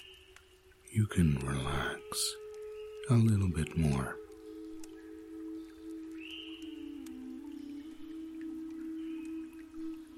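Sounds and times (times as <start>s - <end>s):
flowing water: 0.0s - 10.1s
speech: 0.9s - 2.4s, 3.1s - 4.2s
droplet clicks: 2.4s - 9.9s.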